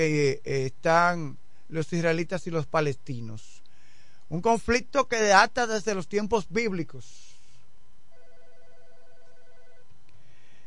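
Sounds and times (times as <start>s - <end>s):
speech: 0.0s - 3.6s, 4.3s - 7.3s
telephone ringing with an incoming call: 8.1s - 9.9s.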